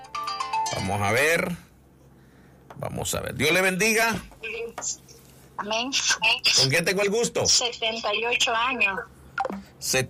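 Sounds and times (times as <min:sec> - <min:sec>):
phone ringtone for an incoming call: 0:00.0 - 0:00.9
speech: 0:00.7 - 0:01.7, 0:02.8 - 0:10.0.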